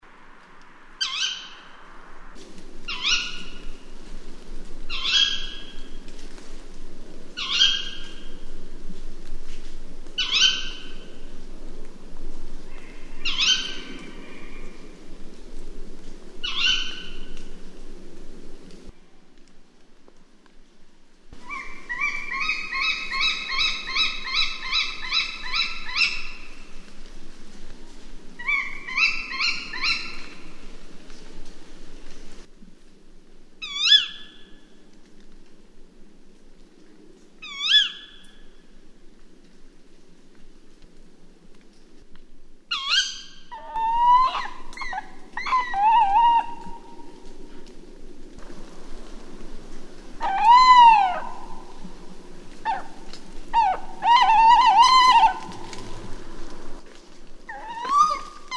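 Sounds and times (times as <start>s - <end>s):
tawny owl: 1.0s - 1.9s, 2.8s - 3.8s, 4.9s - 6.0s, 7.4s - 8.3s, 10.2s - 11.1s, 12.7s - 14.7s, 16.4s - 17.4s, 21.4s - 26.7s, 28.4s - 30.5s, 33.6s - 34.4s, 37.4s - 38.3s, 42.7s - 47.5s, 50.2s - 56.2s, 57.5s - 58.5s.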